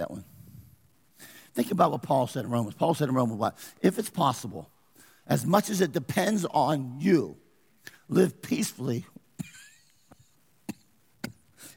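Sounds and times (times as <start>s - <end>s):
speech: 0.0s - 0.3s, 1.6s - 9.2s
painful harsh coughs: 9.4s - 9.8s, 10.6s - 11.7s.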